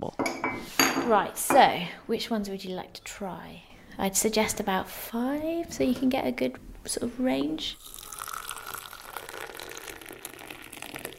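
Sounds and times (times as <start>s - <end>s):
speech: 1.1s - 8.0s
tea pouring into a cup: 7.8s - 11.1s.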